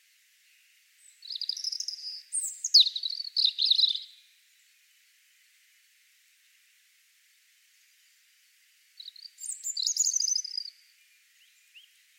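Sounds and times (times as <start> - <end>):
European robin singing: 0.4 - 4.4, 9.0 - 12.1.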